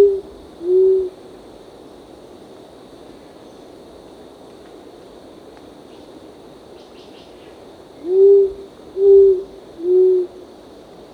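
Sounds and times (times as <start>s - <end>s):
short-toed coucal calling deep even hoots: 0.0s - 1.2s, 8.0s - 10.4s
steady high-pitched hum: 0.0s - 11.1s.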